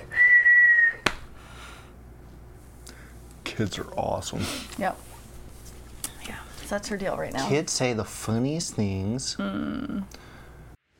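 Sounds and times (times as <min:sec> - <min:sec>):
person whistling a single steady note: 0:00.0 - 0:01.1
speech: 0:03.6 - 0:05.1, 0:06.7 - 0:10.3.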